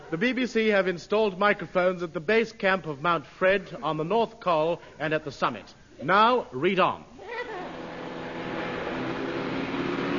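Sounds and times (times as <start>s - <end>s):
speech: 0.1s - 7.4s
car engine droning while driving: 7.7s - 10.1s
road noise: 7.7s - 10.1s.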